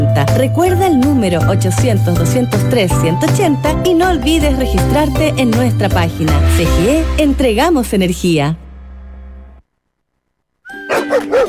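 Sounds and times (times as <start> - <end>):
speech: 0.3 - 8.6
low humming tone: 6.6 - 10.2
dogs barking excitedly: 10.7 - 11.4.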